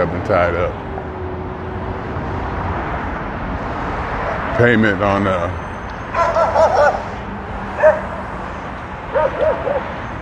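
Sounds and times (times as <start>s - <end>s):
street and engine noise: 0.0s - 10.2s
speech: 0.3s - 0.9s, 4.6s - 5.6s
dog barking from the window of a passing van: 6.2s - 7.1s, 7.8s - 8.3s, 9.1s - 9.9s.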